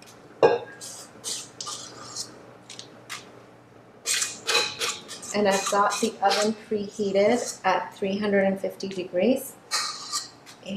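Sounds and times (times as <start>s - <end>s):
utensil scraping chickpea blondie batter in a paper-lined baking pan: 0.8s - 2.4s, 4.1s - 6.6s, 7.2s - 7.6s, 9.7s - 10.6s
speech: 5.4s - 9.6s.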